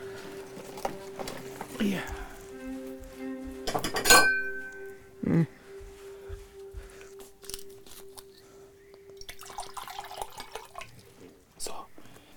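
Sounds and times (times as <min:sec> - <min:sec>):
bottle handling noises: 0:00.0 - 0:09.1
speech: 0:01.8 - 0:02.2
water bottle clinks and knocks: 0:03.7 - 0:04.7
small drips: 0:09.0 - 0:11.4.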